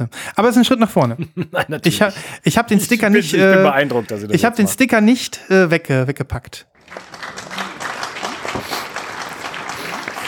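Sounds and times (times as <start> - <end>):
speech: 0.0 - 7.3
laughter: 1.0 - 2.2, 2.8 - 4.7, 6.9 - 10.2
recorded crowd applause: 3.2 - 4.3, 6.8 - 10.2.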